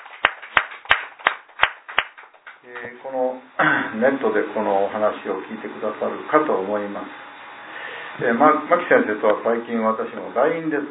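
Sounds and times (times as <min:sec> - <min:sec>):
sharp hand claps as applause: 0:00.0 - 0:02.9
speech: 0:02.6 - 0:07.2, 0:08.2 - 0:10.8.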